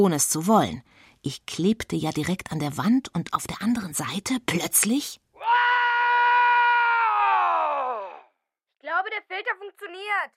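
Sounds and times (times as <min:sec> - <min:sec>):
speech: 0:00.0 - 0:05.2, 0:09.1 - 0:10.3
loud sustained human scream: 0:05.4 - 0:08.3.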